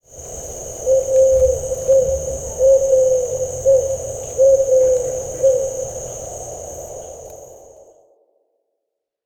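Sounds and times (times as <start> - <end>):
steady background hiss: 0.0 - 8.0
Eurasian eagle-owl giving short level calls: 0.8 - 5.9.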